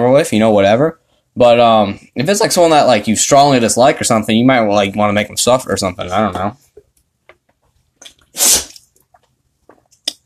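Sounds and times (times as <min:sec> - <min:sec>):
speech: 0:00.0 - 0:06.6, 0:08.4 - 0:08.7
dog sneezing: 0:08.3 - 0:08.8.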